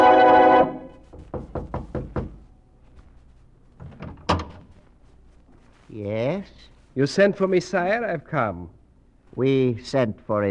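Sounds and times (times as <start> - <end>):
knocking on a wooden chamber door: 1.1 - 2.4
speech: 6.0 - 8.8, 9.4 - 10.5.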